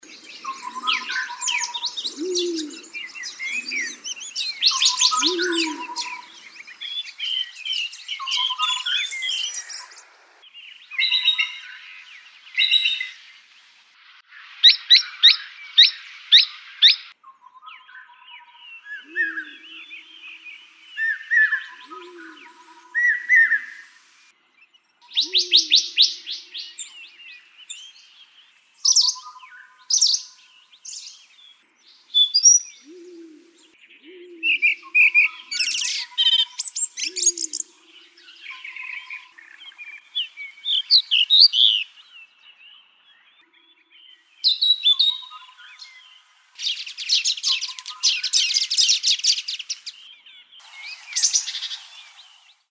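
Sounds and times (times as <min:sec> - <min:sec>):
birds of the hills: 0:00.0 - 0:52.6.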